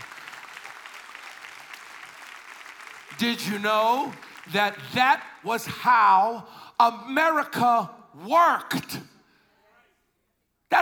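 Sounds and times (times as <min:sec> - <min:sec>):
audience applause: 0:00.0 - 0:05.5
speech: 0:03.1 - 0:09.1.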